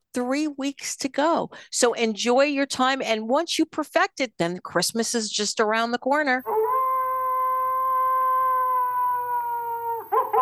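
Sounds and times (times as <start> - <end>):
speech: 0.2 - 6.7
long steady howl: 6.4 - 10.4.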